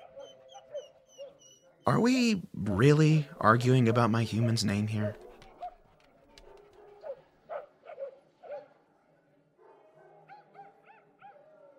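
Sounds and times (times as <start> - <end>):
two dogs barking and yipping: 0.0 - 1.9, 3.5 - 8.9, 9.6 - 11.7
two dogs whimpering: 0.0 - 1.9, 3.6 - 8.1
speech: 1.9 - 5.2.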